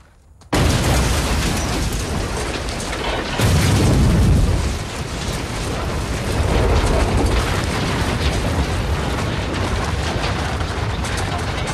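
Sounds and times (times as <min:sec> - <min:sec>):
trailer loaded with gas cylinders exploding: 0:00.6 - 0:11.6.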